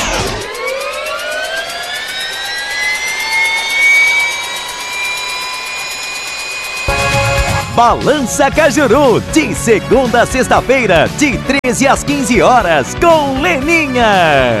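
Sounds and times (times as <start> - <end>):
jet aircraft engines roaring for takeoff: 0.0 - 12.8
speech: 7.8 - 14.5.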